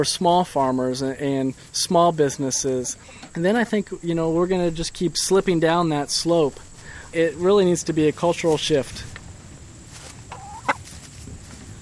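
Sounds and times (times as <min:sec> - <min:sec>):
speech: 0:00.0 - 0:09.2
steady hum: 0:00.0 - 0:11.8
escaped hen clucking: 0:02.6 - 0:03.4, 0:10.1 - 0:11.0.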